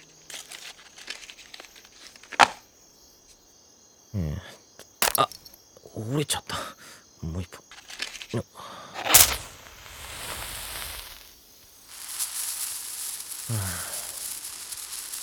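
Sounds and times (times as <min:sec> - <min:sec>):
Japanese senko hanabi sparkler fizzing and crackling: 0:00.0 - 0:02.6, 0:04.8 - 0:05.5, 0:07.2 - 0:15.2
brief low vocal sound: 0:04.1 - 0:07.6, 0:08.3 - 0:09.0, 0:13.5 - 0:14.1
speech: 0:04.2 - 0:04.6, 0:06.0 - 0:06.6, 0:07.2 - 0:07.6.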